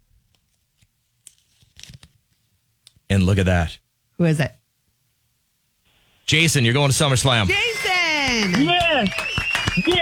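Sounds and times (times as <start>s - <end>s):
folded paper slips rustling and crinkling as grabbed and unfolded: 0.3s - 2.5s
speech: 3.1s - 4.6s, 6.3s - 9.9s.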